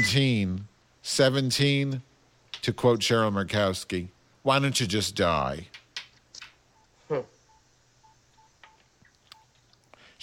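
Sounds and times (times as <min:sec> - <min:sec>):
speech: 0:00.0 - 0:05.8, 0:07.1 - 0:07.3
telephone keypad beeps: 0:07.5 - 0:08.8.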